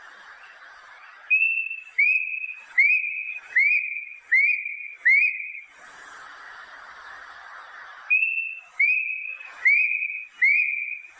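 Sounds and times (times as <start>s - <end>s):
plaintive cuckoo giving clear even whistles: 1.3s - 5.7s, 8.1s - 11.1s.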